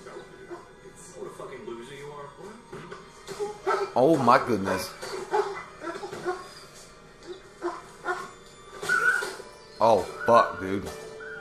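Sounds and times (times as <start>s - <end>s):
speech: 4.0s - 5.0s, 9.8s - 11.0s
dog whimpering and yelping while being stomped in a film scene: 5.1s - 11.3s.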